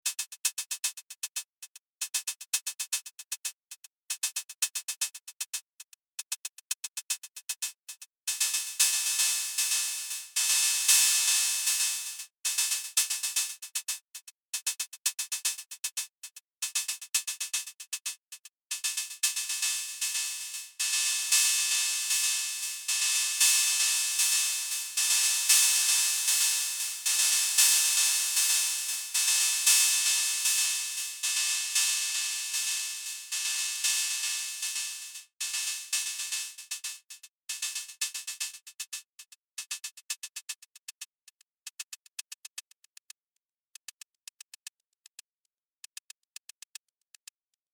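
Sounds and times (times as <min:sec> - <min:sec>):
drum machine hi-hat: 0:00.0 - 0:43.1.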